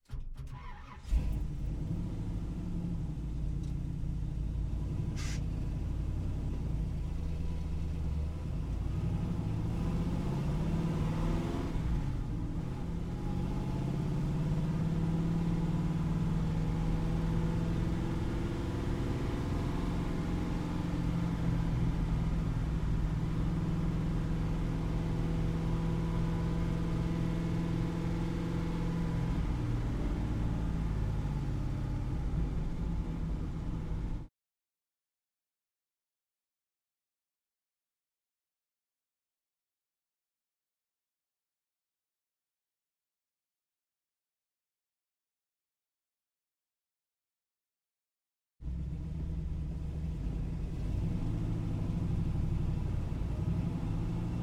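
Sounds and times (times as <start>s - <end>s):
1969 Pontiac Firebird onboard interior while driving at medium speed: 0.1s - 34.3s, 48.7s - 54.4s.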